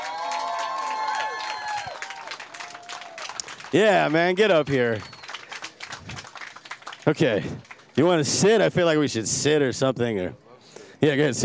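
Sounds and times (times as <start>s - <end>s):
crowd cheering with high whoops and shouts: 0.0s - 3.4s
audience clapping: 0.0s - 8.2s
speech: 3.7s - 5.1s, 7.1s - 10.4s, 11.0s - 11.4s.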